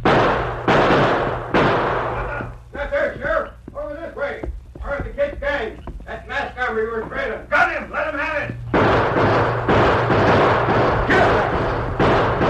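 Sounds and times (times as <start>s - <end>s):
gunshots in a western drama: 0.0s - 2.5s, 8.7s - 12.4s
voices talking: 2.1s - 8.8s.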